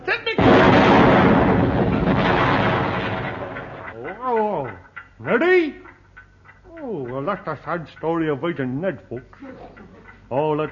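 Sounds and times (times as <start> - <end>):
barrel of saxophones exploding in a loud booming roar: 0.4 - 3.9
speech: 7.3 - 10.6.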